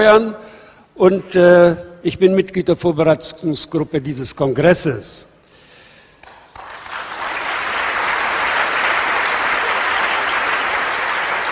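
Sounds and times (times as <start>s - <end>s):
speech: 0.0s - 5.4s
audience applause: 6.2s - 11.5s.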